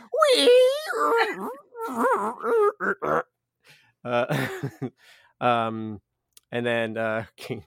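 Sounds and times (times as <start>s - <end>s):
voice imitating a creaking shed door being pulled open: 0.0s - 3.3s
speech: 4.0s - 7.6s
laughter: 4.1s - 4.9s.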